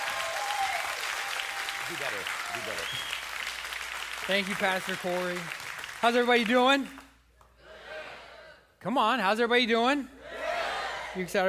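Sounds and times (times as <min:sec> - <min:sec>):
church congregation applauding a guest pastor: 0:00.0 - 0:07.2
speech: 0:01.9 - 0:03.3, 0:04.3 - 0:07.0, 0:08.8 - 0:10.2, 0:11.1 - 0:11.4
whistles from a church congregation: 0:02.8 - 0:03.3.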